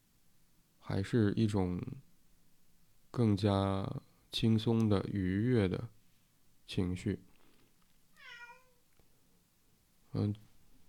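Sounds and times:
speech: 0:00.9 - 0:02.1, 0:03.1 - 0:06.0, 0:06.7 - 0:07.3, 0:10.1 - 0:10.5
cat meowing: 0:08.2 - 0:08.8.

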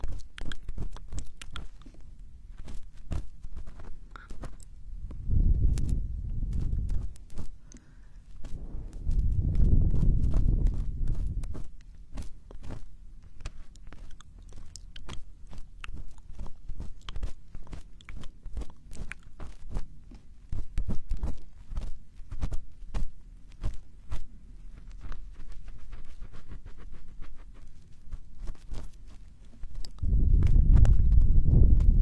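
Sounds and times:
ear cleaning scratches, clicks and crackles: 0:00.0 - 0:32.0
deep rumbling: 0:04.9 - 0:07.3, 0:08.4 - 0:11.6, 0:30.0 - 0:32.0.

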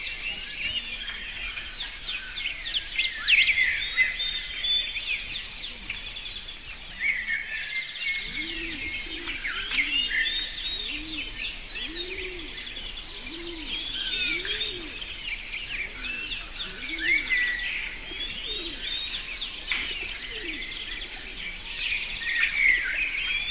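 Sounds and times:
birds whistling and chirping in a forest: 0:00.0 - 0:23.4
dove cooing: 0:08.2 - 0:21.4.

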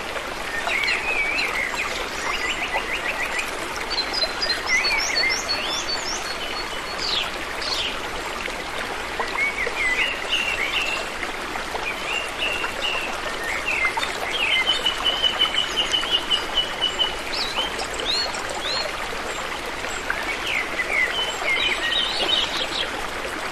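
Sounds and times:
flowing water rushing: 0:00.0 - 0:23.5.

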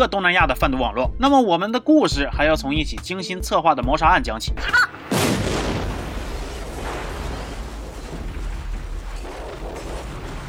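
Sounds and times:
speech: 0:00.0 - 0:05.2
crackling debris: 0:04.9 - 0:10.4
car explosion blast: 0:05.0 - 0:10.4.

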